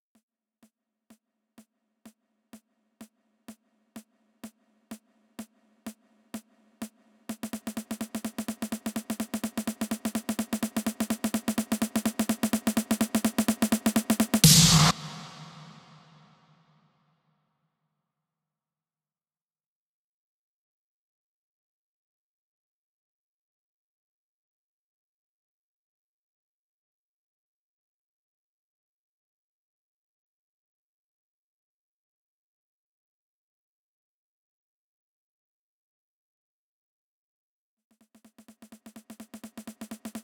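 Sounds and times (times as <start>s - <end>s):
future house drum fills: 4.0s - 16.2s, 38.2s - 40.2s.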